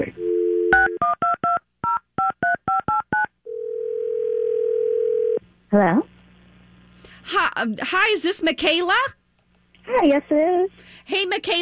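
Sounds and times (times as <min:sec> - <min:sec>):
speech: 0:00.0 - 0:00.2, 0:05.7 - 0:06.1, 0:07.2 - 0:09.2, 0:09.9 - 0:11.5
long steady phone tone: 0:00.0 - 0:01.6, 0:02.7 - 0:05.4
telephone dial tone: 0:00.2 - 0:01.0, 0:03.5 - 0:05.4.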